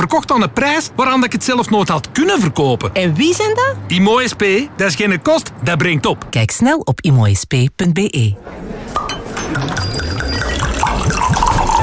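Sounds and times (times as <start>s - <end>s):
speech: 0.0s - 8.8s, 9.5s - 10.0s
wine pouring into a glass in a wine bar: 9.4s - 11.8s.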